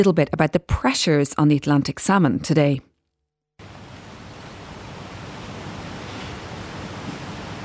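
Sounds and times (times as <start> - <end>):
speech: 0.0 - 2.9
rushing water: 3.6 - 7.6.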